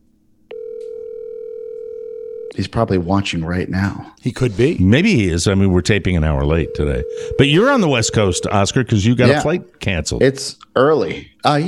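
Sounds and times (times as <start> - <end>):
telephone line click: 0.5 - 2.3
telephone dial tone on a line picked up to place a call: 0.5 - 2.5, 6.6 - 8.6
speech: 2.6 - 11.6.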